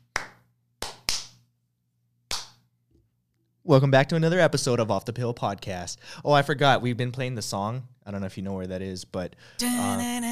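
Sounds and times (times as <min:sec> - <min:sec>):
hands clapping: 0:00.0 - 0:01.4, 0:02.3 - 0:02.6
speech: 0:03.6 - 0:10.3.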